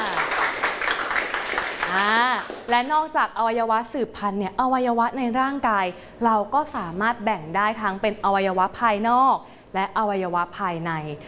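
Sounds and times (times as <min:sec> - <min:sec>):
class applauding a classmate: 0:00.0 - 0:02.7
speech: 0:01.9 - 0:11.2.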